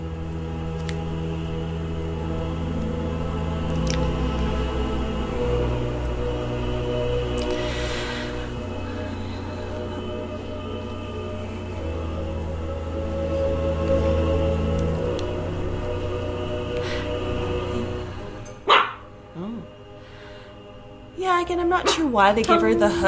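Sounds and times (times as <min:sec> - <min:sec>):
steady low humming noise: 0:00.0 - 0:23.0
dog barking in short sharp yelps: 0:18.6 - 0:19.1
speech: 0:21.5 - 0:23.0.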